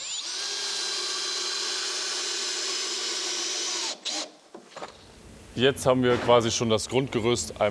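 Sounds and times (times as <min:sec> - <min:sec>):
power driver driving screws into timber walls: 0:00.0 - 0:04.4
speech: 0:05.6 - 0:07.7.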